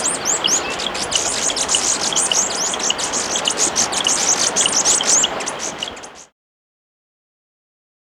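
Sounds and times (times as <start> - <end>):
viridian metaltail subspecies atrigularis chipping and twittering in Ecuador: 0.0 - 6.3.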